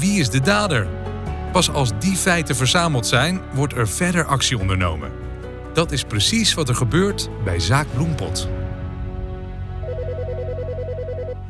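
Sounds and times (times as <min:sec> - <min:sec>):
speech: 0:00.0 - 0:08.6
telephone ringing with electronic warbling trill: 0:09.8 - 0:11.4.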